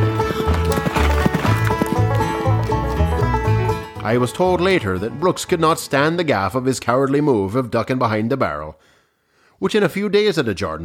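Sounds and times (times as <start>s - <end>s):
hoofbeats of a horse being ridden off: 0.0s - 5.6s
speech: 4.1s - 8.9s, 9.6s - 10.8s.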